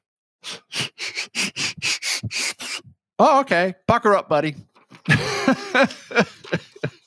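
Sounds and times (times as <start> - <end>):
sharp breathy sniffs: 0.4 - 2.9
speech: 3.2 - 6.6
laughter: 4.9 - 7.0.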